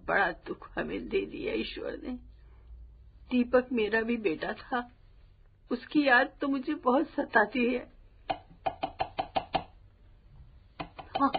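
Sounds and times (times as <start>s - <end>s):
speech: 0.1s - 2.3s, 3.3s - 5.0s, 5.7s - 8.4s, 11.2s - 11.3s
knocking on a door: 8.6s - 9.7s.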